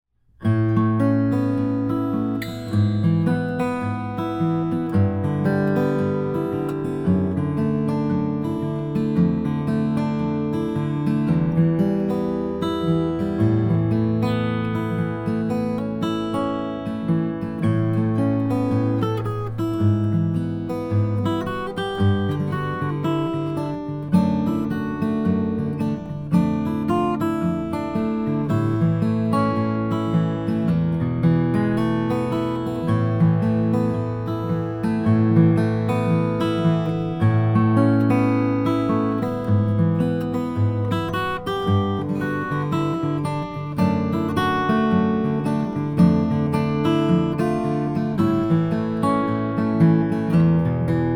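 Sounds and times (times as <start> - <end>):
Froggy Bottom H12 cutaway walnut guitar: 0.2 - 51.1.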